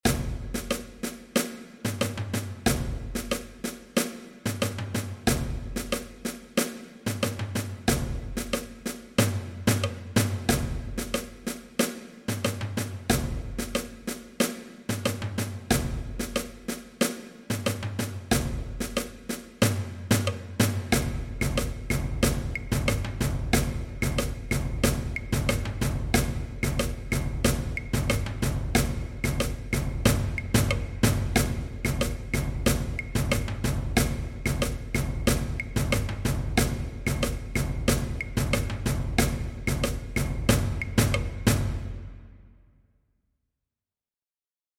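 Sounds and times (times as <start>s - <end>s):
percussion: 0.0s - 42.2s.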